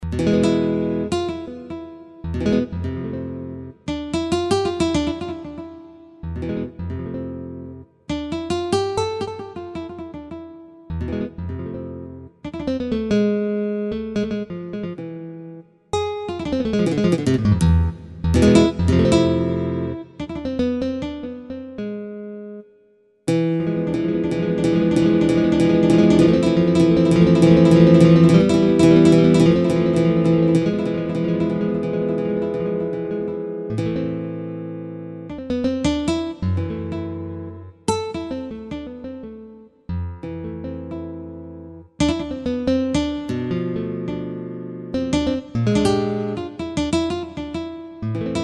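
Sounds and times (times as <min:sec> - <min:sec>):
jazz guitar from Spain: 0:00.0 - 0:22.6, 0:23.3 - 0:48.4.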